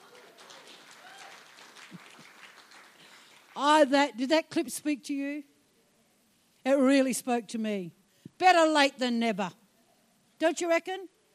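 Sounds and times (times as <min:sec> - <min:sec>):
audience applause: 0:00.0 - 0:03.6
speech: 0:03.6 - 0:05.5, 0:06.6 - 0:09.6, 0:10.4 - 0:11.2.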